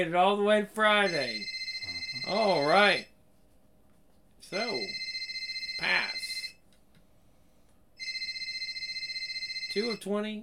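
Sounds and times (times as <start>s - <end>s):
speech: 0.0s - 1.5s, 2.3s - 3.1s, 4.4s - 5.0s, 5.8s - 6.2s, 9.8s - 10.4s
telephone ringing with an electronic trill: 1.1s - 3.1s, 4.6s - 6.6s, 8.0s - 10.1s.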